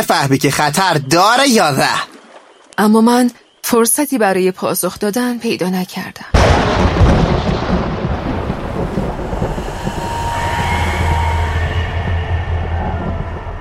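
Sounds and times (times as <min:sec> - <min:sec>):
speech: 0:00.0 - 0:02.1, 0:02.8 - 0:07.5
distant roar of an approaching storm: 0:06.4 - 0:13.5
low sustained drone: 0:08.0 - 0:13.5.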